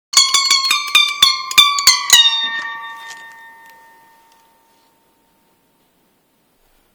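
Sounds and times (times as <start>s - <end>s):
egg harp: 0.2s - 5.0s.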